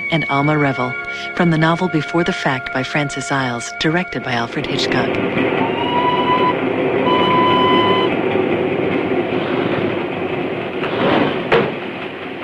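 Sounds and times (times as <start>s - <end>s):
train running through a tunnel: 0.0s - 12.4s
speech: 0.1s - 5.9s
thin high whine: 2.4s - 8.2s.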